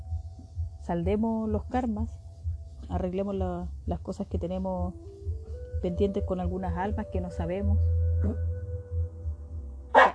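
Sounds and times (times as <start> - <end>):
steady low hum: 0.0 - 10.0
speech: 0.9 - 2.2, 2.9 - 5.1, 5.8 - 8.5
dog barking: 9.9 - 10.1.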